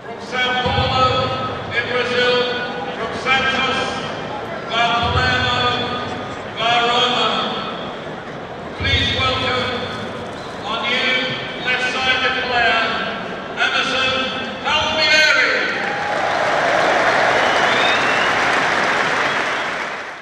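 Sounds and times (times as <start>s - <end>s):
voice over stadium loudspeakers during player presentation: 0.0s - 8.0s, 8.8s - 15.8s
stadium crowd cheering and applauding at a football stadium in England: 15.6s - 20.2s.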